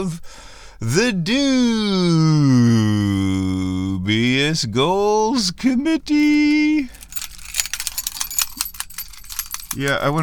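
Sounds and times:
speech: 0.0 - 3.3, 4.0 - 7.0, 9.8 - 10.2
car keys jiggled by someone sitting in a car: 6.1 - 10.2.

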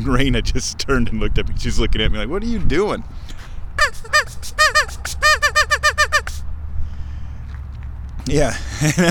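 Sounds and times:
speech: 0.0 - 4.6, 8.3 - 9.0
man blowing a duck call toward geese: 3.8 - 6.5
laughter: 8.6 - 9.0.

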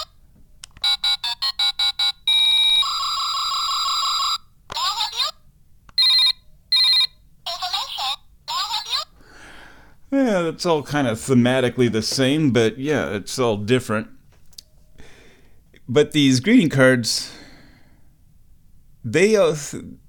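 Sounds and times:
telephone gadget playing electronic ringing tones: 0.8 - 4.5, 6.0 - 7.1
speech: 10.1 - 14.1, 15.9 - 17.3, 19.1 - 20.0.

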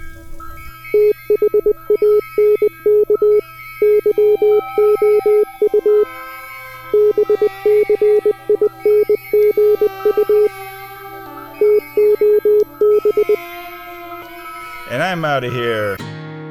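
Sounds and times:
loud electronic beeps: 0.0 - 16.0.

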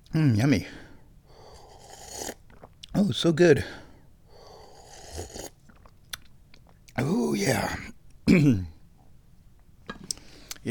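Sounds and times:
speech: 0.1 - 0.8, 3.0 - 3.8, 7.0 - 8.7
slurping sip of hot tea: 1.5 - 2.7, 4.5 - 5.9.

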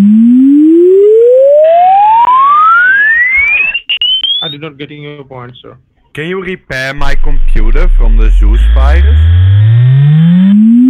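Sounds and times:
exponential sine wave sweep test tone with buzzy distortion: 0.0 - 4.6, 7.0 - 10.8
speech: 4.7 - 9.7.

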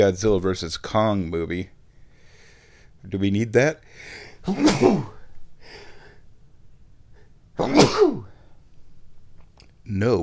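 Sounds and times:
speech: 0.0 - 1.8, 3.0 - 5.2, 7.6 - 8.3, 9.9 - 10.2
faint sharp inhale: 1.9 - 3.0, 3.9 - 4.4, 5.6 - 6.3
loud sneezes: 4.4 - 5.3, 7.6 - 8.4.

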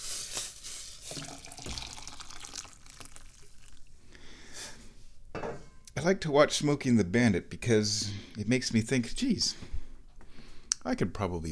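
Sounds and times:
water being poured, splashing and trickling: 1.0 - 4.0
speech: 6.0 - 9.7, 10.8 - 11.5.

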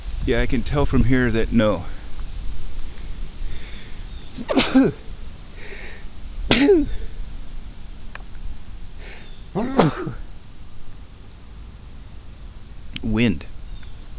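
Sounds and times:
faint steady outdoor background: 0.0 - 14.1
speech: 0.2 - 2.0, 4.4 - 5.0, 6.6 - 7.0, 9.6 - 10.2, 13.1 - 13.5
sharp explosive sneezes: 4.4 - 5.0, 6.5 - 7.1, 9.0 - 10.3.

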